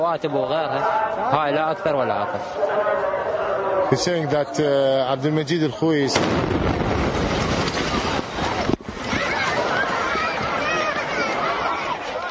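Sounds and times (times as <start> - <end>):
speech: 0.0 - 7.5
noisy crowd: 0.0 - 12.2
car bomb explosion at the Shiite shrine of the Imam Ali in Najaf Iraq: 6.1 - 8.7
high-pitched screams: 7.8 - 12.2.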